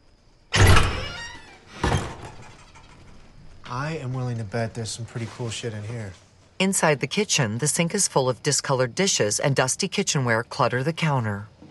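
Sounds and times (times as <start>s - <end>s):
heavy thunk of old wooden door: 0.5s - 2.5s
old rotting wooden door creaking open into a house: 0.5s - 3.4s
speech: 3.7s - 11.6s.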